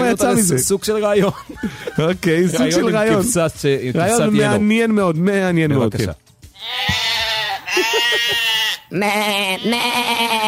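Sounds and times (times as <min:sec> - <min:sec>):
speech: 0:00.1 - 0:07.0, 0:07.8 - 0:10.4
laughter: 0:01.1 - 0:03.2, 0:07.7 - 0:08.6
sheep bleating loudly: 0:06.5 - 0:10.4.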